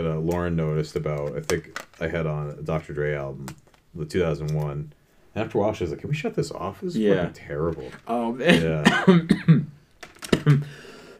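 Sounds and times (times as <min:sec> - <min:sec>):
speech: 0:00.0 - 0:09.7, 0:10.4 - 0:10.8
person coughing: 0:08.5 - 0:09.7.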